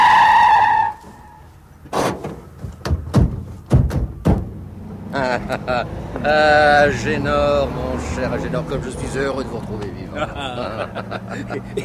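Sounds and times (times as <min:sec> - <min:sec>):
car tires screeching in a skid: 0:00.0 - 0:11.8
sharp knocks and thumps: 0:01.8 - 0:04.7
laughter: 0:05.1 - 0:11.8
speech: 0:05.4 - 0:11.8.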